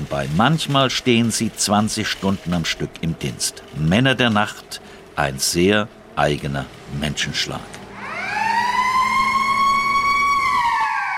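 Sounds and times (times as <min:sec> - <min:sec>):
low engine rumble: 0:00.0 - 0:09.6
speech: 0:00.1 - 0:07.8
siren signalling market opening: 0:07.9 - 0:11.1.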